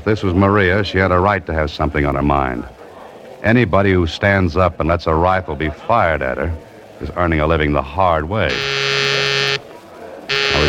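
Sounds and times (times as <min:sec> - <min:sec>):
speech: 0:00.0 - 0:02.8, 0:03.4 - 0:09.0
harsh electric call buzzer: 0:08.5 - 0:09.6, 0:10.3 - 0:10.6.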